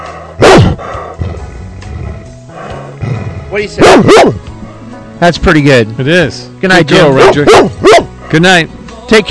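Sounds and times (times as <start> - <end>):
dog barking with a sharp yip: 0.4 - 0.8, 3.8 - 4.9, 7.2 - 8.1
speech: 3.5 - 4.5, 5.2 - 9.2.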